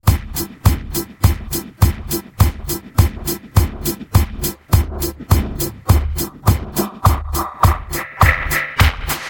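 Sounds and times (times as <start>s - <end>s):
rock DJ drum beat: 0.0s - 9.2s.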